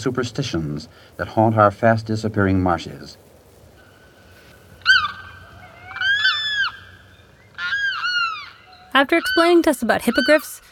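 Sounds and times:
speech: 0.0s - 3.3s, 9.0s - 10.6s
limpkin crying in a large southern swampland: 4.8s - 6.9s, 7.6s - 10.7s.

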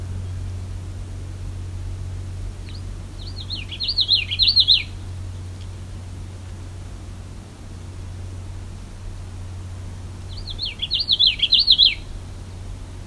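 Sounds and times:
steady low hum: 0.0s - 13.0s
Common Yellowthroat song with rapid rolling warbled phrases: 2.6s - 5.0s, 10.3s - 12.2s.

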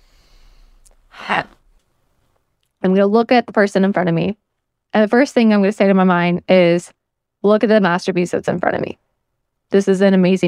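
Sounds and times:
deep breath: 0.0s - 1.3s
faint hiss: 0.0s - 10.4s
speech: 2.8s - 9.0s, 9.7s - 10.4s.

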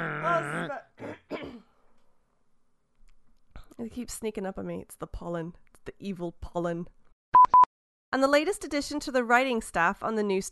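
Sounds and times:
person clearing throat: 0.0s - 1.8s
speech: 3.8s - 7.0s, 8.1s - 10.5s.

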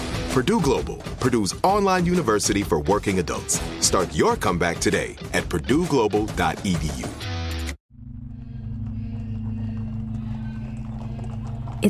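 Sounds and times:
speech: 0.4s - 7.4s
horse hooves clip-clopping at a walking rhythm: 8.4s - 11.8s
cart wheels rumbling: 8.6s - 11.8s.

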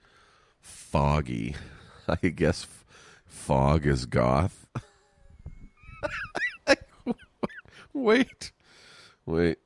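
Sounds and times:
speech: 0.9s - 4.9s, 8.0s - 8.6s, 9.3s - 9.6s
raspy coughs and throaty hacks: 6.0s - 7.7s.

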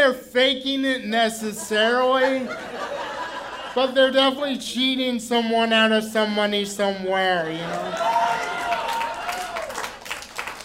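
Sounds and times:
speech: 0.1s - 3.0s, 3.8s - 8.6s
laughter: 1.4s - 4.4s, 7.6s - 9.6s
crowd applause: 7.6s - 10.6s.

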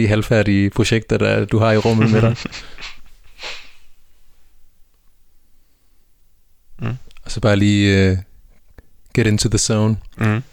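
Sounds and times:
speech: 0.0s - 3.6s, 7.3s - 8.3s, 9.2s - 10.5s
laughter: 1.6s - 3.6s
deep breaths drawn into a microphone: 1.8s - 4.4s.

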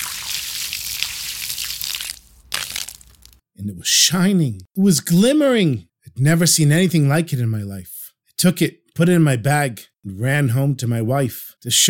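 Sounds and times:
water pouring: 0.0s - 3.4s
speech: 3.6s - 11.8s.

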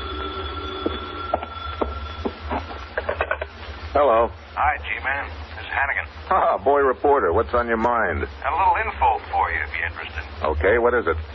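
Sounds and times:
telephone ringing in a hotel room at night: 0.0s - 3.0s
low hum: 0.0s - 11.3s
speech: 4.0s - 11.3s.

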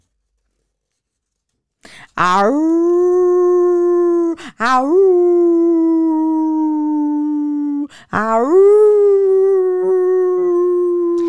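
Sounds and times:
speech: 2.2s - 3.1s, 4.6s - 5.8s, 8.1s - 8.9s
person imitating a wolf with a howl: 2.2s - 11.2s.

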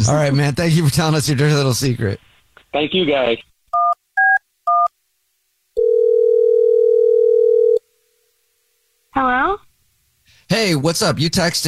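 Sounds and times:
speech: 0.1s - 3.5s, 9.2s - 9.6s, 10.5s - 11.6s
steady telephone tone as a call is placed: 5.8s - 7.8s.

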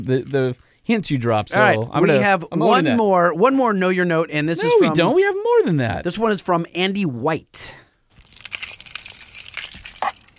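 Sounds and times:
speech: 0.0s - 7.8s
bunch of keys jangling: 8.1s - 10.3s.

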